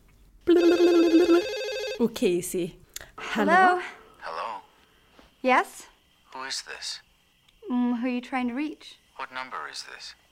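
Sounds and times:
telephone ringing with a bright warbling trill: 0.5 - 2.1
speech: 2.0 - 2.8, 3.4 - 4.0, 5.4 - 7.1, 7.7 - 10.2.

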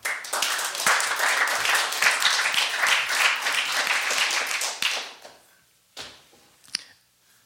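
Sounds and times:
crowd applauding with many hands clapping: 0.0 - 5.2
scattered claps: 0.0 - 5.3.

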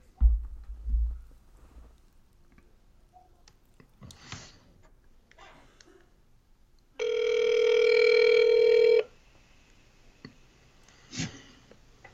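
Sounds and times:
soft thumps: 0.1 - 2.0
phone ringback tone while calling a friend: 7.0 - 9.1.

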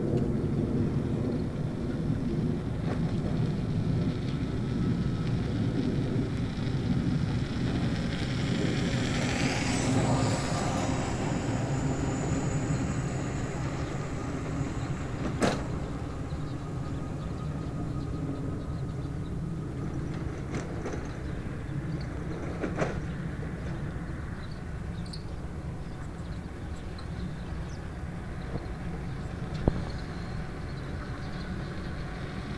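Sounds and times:
low steady engine drone: 0.0 - 32.5
vehicle driving by with a falling whine: 4.8 - 21.7.

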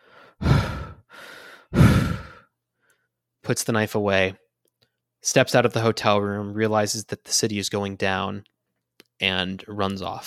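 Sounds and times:
tired, cut and bleeding man breathing heavily: 0.0 - 3.0
speech: 3.5 - 4.4, 5.2 - 8.6, 9.2 - 10.2.

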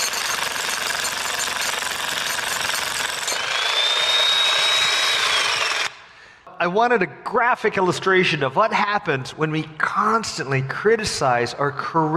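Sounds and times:
jackhammer breaking stone: 0.0 - 6.0
speech: 6.6 - 12.1.

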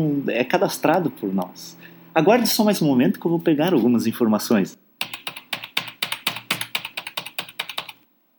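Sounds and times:
speech: 0.0 - 4.8
simulated computer keyboard typing played by a telemarketing robot during a phone call: 5.0 - 8.0.

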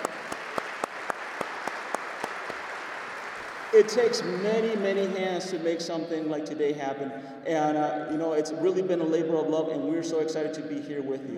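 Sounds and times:
audience applause: 0.0 - 5.7
speech: 3.7 - 11.3.

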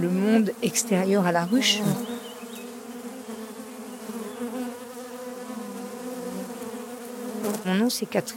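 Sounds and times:
speech: 0.0 - 2.2, 7.7 - 8.3
honeybees buzzing beneath a walnut tree: 0.0 - 8.3.

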